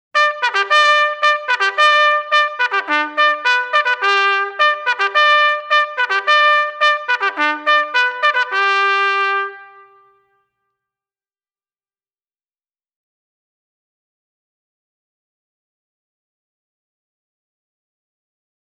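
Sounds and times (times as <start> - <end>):
bugle call: 0.2 - 10.3.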